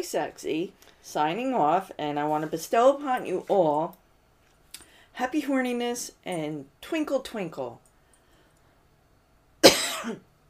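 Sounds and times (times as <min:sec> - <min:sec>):
speech: 0:00.0 - 0:04.0, 0:05.2 - 0:07.8, 0:10.0 - 0:10.3
harsh cough after choking on a drink: 0:09.6 - 0:10.3.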